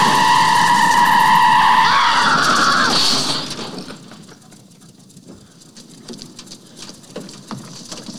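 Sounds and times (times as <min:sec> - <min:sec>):
car in traffic skidding with a high tire screech: 0:00.0 - 0:04.1
soft scattered street noise: 0:00.0 - 0:04.3.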